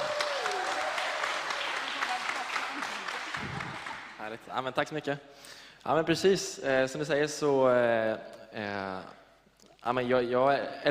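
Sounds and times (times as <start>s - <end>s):
sustained applause from an audience: 0.0s - 4.2s
speech: 4.3s - 9.2s, 9.8s - 10.8s.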